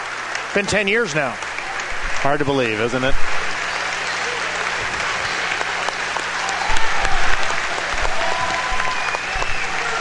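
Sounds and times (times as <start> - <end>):
large crowd applauding in an echoing indoor hall: 0.0 - 10.0
speech: 0.5 - 1.5, 2.2 - 3.5
scattered shouts from the crowd: 3.9 - 10.0.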